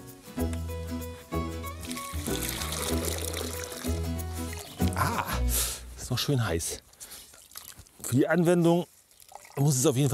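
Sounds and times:
music with a steady bass line: 0.0 - 6.0
hot garlic and onion tea poured through a strainer: 1.8 - 4.9, 7.2 - 8.1, 9.0 - 10.1
speech: 6.1 - 6.8, 8.1 - 8.9, 9.6 - 10.1.

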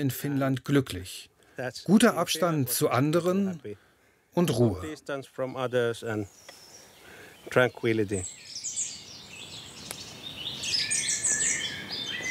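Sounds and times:
speech: 0.0 - 3.8, 4.4 - 6.6, 7.4 - 8.4
birds singing and chirping outdoors: 4.4 - 12.2.

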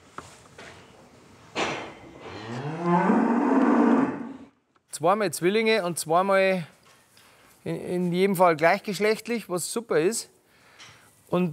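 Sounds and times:
calves mooing in a cattle barn: 2.2 - 4.4
speech: 5.0 - 6.8, 7.6 - 11.5.

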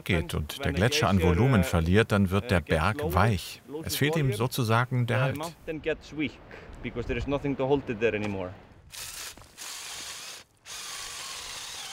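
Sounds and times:
speech: 0.0 - 9.1
rock drill boring holes into rock: 8.9 - 11.9.

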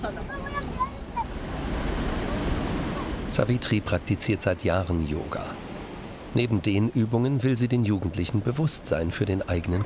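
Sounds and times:
Pacific ocean waves breaking: 0.0 - 9.8
speech: 3.3 - 5.6, 6.3 - 9.8.

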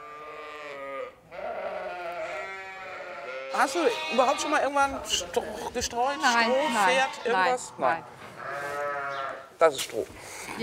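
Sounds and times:
sheep bleating on a sheep farm in Aukrug near Neumünster: 0.0 - 9.5
speech: 3.6 - 8.3, 9.6 - 10.6.

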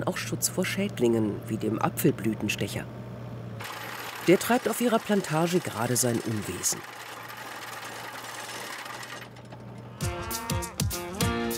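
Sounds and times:
speech: 0.0 - 3.1, 4.2 - 7.0
cattle mooing on a lush meadow pasture by a lake: 9.9 - 11.5.

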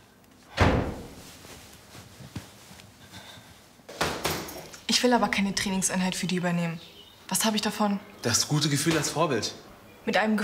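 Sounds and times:
door slamming shut against a draught: 0.5 - 1.2
speech: 4.9 - 10.4.

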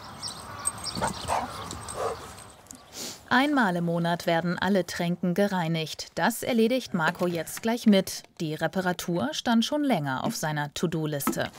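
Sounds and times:
outdoor hiss: 0.0 - 10.6
dog barking in high yipping bursts: 1.0 - 2.3
speech: 1.0 - 2.3, 3.3 - 11.5.

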